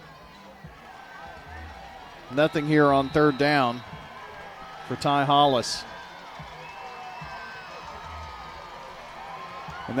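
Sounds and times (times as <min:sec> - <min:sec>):
football crowd cheering across a stadium: 0:00.0 - 0:09.9
speech: 0:02.3 - 0:04.0, 0:04.9 - 0:05.9
scattered whoops from the stadium crowd: 0:06.3 - 0:09.9.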